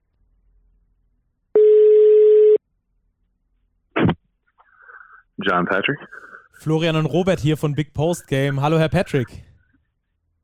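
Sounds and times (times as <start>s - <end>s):
steady mid-pitched telephone ringback tone: 1.6s - 2.6s
speech: 5.4s - 9.5s.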